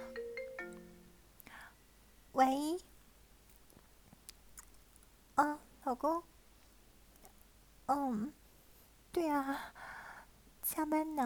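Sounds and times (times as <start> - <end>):
phone ringtone for an incoming call with descending electronic notes: 0.0 - 1.1
speech: 2.4 - 2.9, 5.9 - 6.3, 7.9 - 8.4, 9.2 - 9.8, 10.7 - 11.2.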